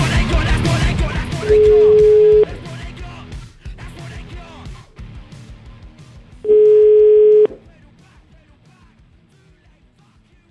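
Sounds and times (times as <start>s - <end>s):
rhythmic music: 0.0s - 10.4s
telephone dial tone: 1.5s - 2.5s, 6.5s - 7.6s.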